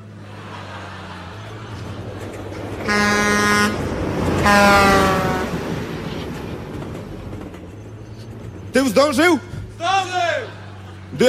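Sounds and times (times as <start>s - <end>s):
laughter: 0.0s - 4.2s, 9.4s - 11.2s
freight train horn blasts at an unguarded level crossing: 2.8s - 5.8s
speech: 9.0s - 9.5s.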